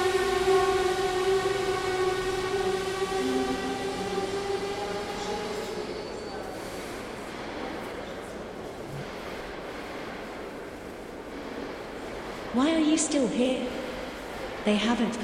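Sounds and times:
high whining tone: 0:00.0 - 0:07.1
train departing from platform rumbling: 0:00.0 - 0:15.2
speech: 0:12.6 - 0:13.8, 0:14.6 - 0:15.2.

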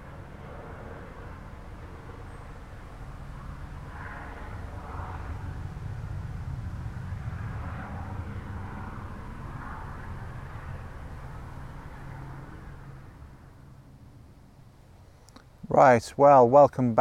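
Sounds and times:
military helicopter rotor and engine rumble passing overhead: 0:00.0 - 0:16.9
speech: 0:15.7 - 0:16.9.

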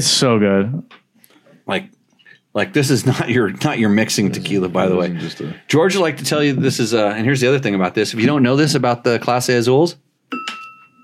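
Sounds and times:
speech: 0:00.0 - 0:01.0, 0:01.7 - 0:02.0, 0:02.6 - 0:10.6
bell ringing: 0:10.3 - 0:11.0.

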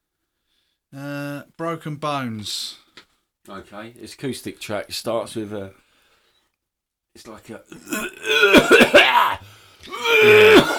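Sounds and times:
speech: 0:00.9 - 0:02.8, 0:03.4 - 0:05.8, 0:07.2 - 0:10.7
drawn-out gravelly throat-clearing: 0:07.7 - 0:10.7
loud rough coughing: 0:07.8 - 0:10.7.

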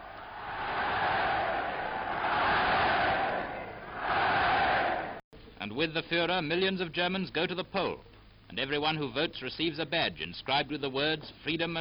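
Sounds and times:
large crowd cheering: 0:00.0 - 0:05.2
speech: 0:05.7 - 0:11.7.

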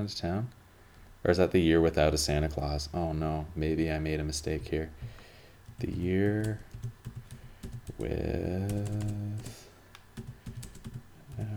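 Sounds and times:
speech: 0:00.0 - 0:00.6, 0:01.2 - 0:05.2, 0:05.8 - 0:07.0, 0:08.0 - 0:09.6
computer keyboard clicks: 0:05.7 - 0:08.1, 0:08.7 - 0:09.5, 0:10.2 - 0:11.5.

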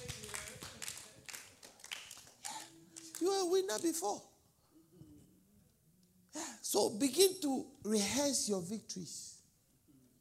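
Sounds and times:
crowd clapping: 0:00.0 - 0:04.1
speech: 0:03.4 - 0:04.3, 0:06.7 - 0:09.3.

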